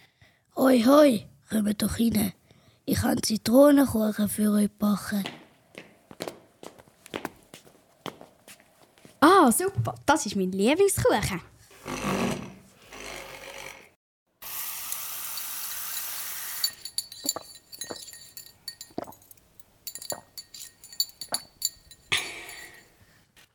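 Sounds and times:
speech: 0:00.6 - 0:05.4, 0:09.5 - 0:12.0
cups and dishes clinking: 0:15.2 - 0:23.0.

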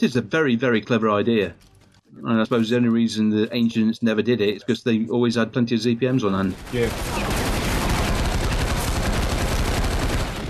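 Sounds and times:
speech: 0:00.0 - 0:07.3
automatic assault rifle gunfire: 0:06.6 - 0:10.4.

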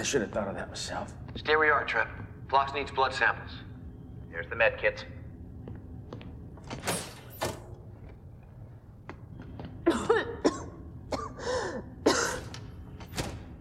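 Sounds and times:
speech: 0:00.0 - 0:03.6, 0:04.3 - 0:05.2
person clearing throat: 0:09.8 - 0:12.6
person coughing: 0:09.8 - 0:12.6.

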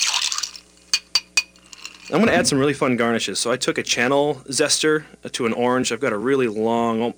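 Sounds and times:
ice and liquid swirling in a glass: 0:00.0 - 0:00.8
metal bar spoon clinking in a glass of strawberry shrub cocktail: 0:00.0 - 0:02.2
speech: 0:02.1 - 0:07.1.

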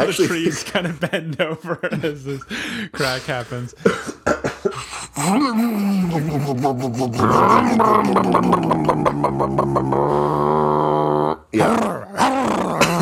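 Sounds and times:
laughter: 0:00.0 - 0:03.0, 0:05.5 - 0:10.4
speech: 0:00.0 - 0:10.8, 0:11.6 - 0:12.0
person imitating a growling dog: 0:05.1 - 0:13.0.

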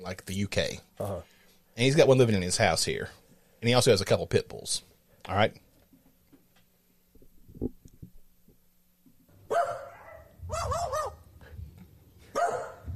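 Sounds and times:
speech: 0:00.0 - 0:05.6
magpie kept in a house mimicking a dog's barking: 0:09.5 - 0:11.2.

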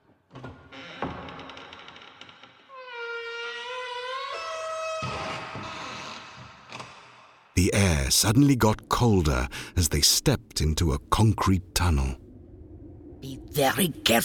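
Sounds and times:
door creaking open with a long hinge squeal: 0:00.4 - 0:05.9
speech: 0:07.6 - 0:12.2, 0:13.2 - 0:14.2.

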